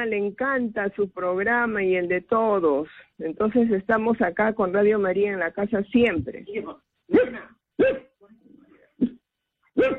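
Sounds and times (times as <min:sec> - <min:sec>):
speech: 0:00.0 - 0:08.1
dog barking sharply: 0:07.1 - 0:08.2, 0:09.8 - 0:09.9.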